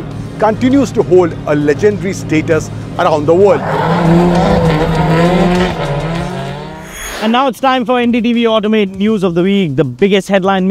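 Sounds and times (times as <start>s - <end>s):
drifting car engine roaring at high revs in Tokyo: 0.0s - 7.5s
speech: 0.4s - 5.8s, 7.2s - 10.6s
car tires squealing in a sustained drift: 3.1s - 7.4s.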